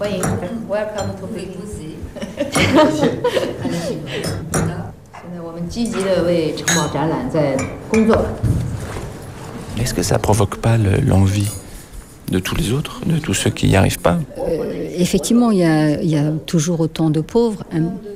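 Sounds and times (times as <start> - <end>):
tableware clatter: 0.0 - 1.4, 5.9 - 9.4
speech: 0.0 - 4.4, 5.7 - 8.6, 9.8 - 11.6, 12.3 - 18.1
glasses clinking in a toast: 0.1 - 1.4, 6.6 - 8.3
laughter: 2.1 - 4.3.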